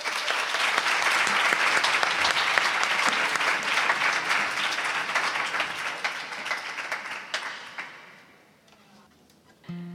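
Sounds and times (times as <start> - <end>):
large audience applause: 0.0 - 8.2.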